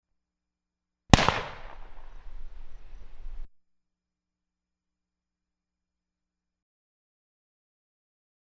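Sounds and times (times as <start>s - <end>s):
WW2 era British Enfield No.4 Mk 1 rifle gunshot at 45 meters: 1.1s - 3.5s.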